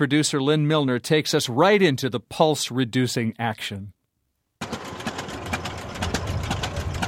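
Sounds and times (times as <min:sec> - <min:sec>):
speech: 0:00.0 - 0:04.0
two-cylinder tractor engines chugging slowly: 0:04.6 - 0:07.0.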